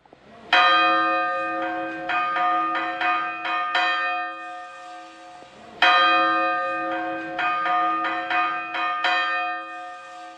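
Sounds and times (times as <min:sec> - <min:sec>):
oldest large church bell of a cathedral tower ringing: 0:00.5 - 0:10.3.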